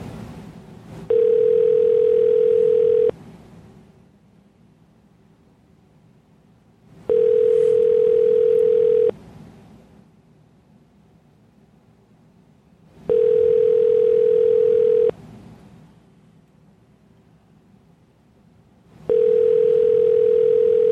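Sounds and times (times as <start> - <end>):
electronic ringback tone of outgoing phone call: 1.1 - 3.1, 7.1 - 9.1, 13.1 - 15.1, 19.1 - 20.8.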